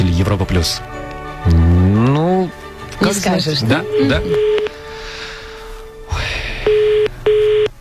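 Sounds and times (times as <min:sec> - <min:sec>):
speech: 0:00.2 - 0:04.7
telephone ringing tone on a long-distance call: 0:03.7 - 0:04.8, 0:06.6 - 0:07.7
hissy phone line: 0:03.8 - 0:04.8, 0:06.5 - 0:07.7.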